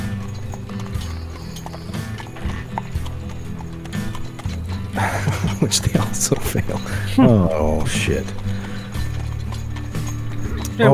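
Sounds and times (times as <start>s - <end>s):
horses trotting with clip-clop of hooves: 0.0s - 10.9s
laughter: 0.0s - 10.9s
speech: 5.1s - 8.5s, 10.8s - 10.9s.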